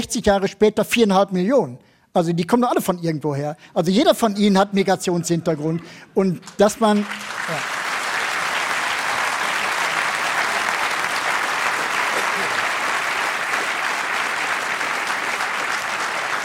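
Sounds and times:
speech: 0:00.0 - 0:07.7
audience applause: 0:06.6 - 0:16.4.

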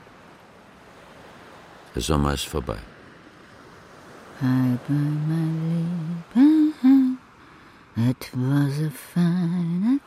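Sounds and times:
surf on an empty beach: 0:00.0 - 0:10.0
wind on an empty beach: 0:00.0 - 0:10.0
speech: 0:02.0 - 0:02.9, 0:04.4 - 0:06.9, 0:08.0 - 0:10.0.

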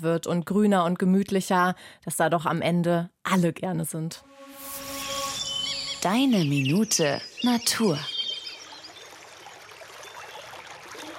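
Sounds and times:
speech: 0:00.0 - 0:04.6, 0:06.0 - 0:08.1
small brook babbling and splashing: 0:06.5 - 0:11.1.

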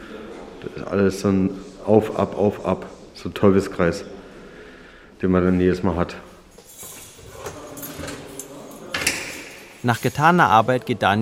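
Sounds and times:
speech: 0:00.6 - 0:04.2, 0:05.2 - 0:06.3, 0:09.8 - 0:11.2
heavy prison door to the stairwell being unlatched and swung open: 0:06.8 - 0:10.0.

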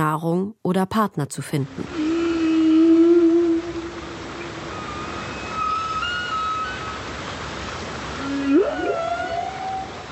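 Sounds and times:
speech: 0:00.0 - 0:02.0
humpback whale song: 0:01.8 - 0:07.2, 0:08.1 - 0:10.0
constant underwater hiss: 0:01.9 - 0:10.0.

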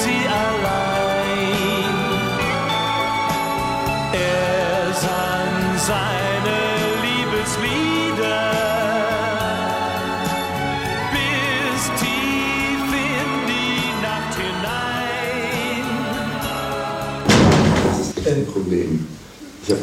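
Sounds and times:
busy voices: 0:00.0 - 0:19.8
door thudding shut backstage at a hockey stadium concert venue: 0:17.2 - 0:18.2.

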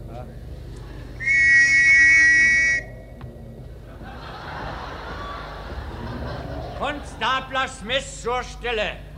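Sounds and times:
low hiss: 0:00.0 - 0:09.1
loud shrill whistle blast: 0:01.2 - 0:03.2
laughter: 0:03.7 - 0:07.5
speech: 0:07.2 - 0:09.0.

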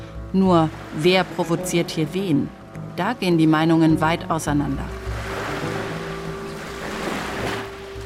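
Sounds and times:
speech: 0:00.3 - 0:05.0
gentle waves washing onto a pebble beach: 0:05.0 - 0:08.0.

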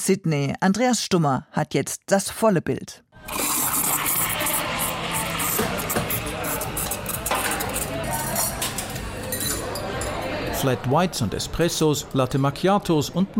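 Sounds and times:
speech: 0:00.0 - 0:03.5, 0:10.6 - 0:13.3
running water in a café: 0:03.2 - 0:07.8
steady crowd murmur in a busy corner café: 0:03.2 - 0:12.2
dishes and cups clinking in a busy café: 0:03.4 - 0:10.3
sharper clatters of dishes in a café: 0:05.5 - 0:10.3.

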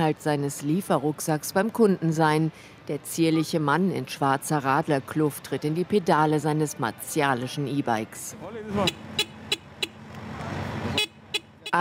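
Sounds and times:
speech: 0:00.0 - 0:09.3
busy street traffic in the Midtown business district of Manhattan: 0:00.0 - 0:11.7
short sharp car horn toots: 0:08.7 - 0:10.0, 0:10.9 - 0:11.7.

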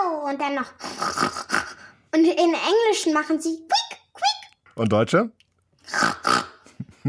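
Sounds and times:
speech: 0:00.3 - 0:01.5, 0:02.1 - 0:03.7, 0:04.8 - 0:06.0
person imitating a pig's snoring grunt: 0:00.8 - 0:02.0, 0:05.9 - 0:06.8.

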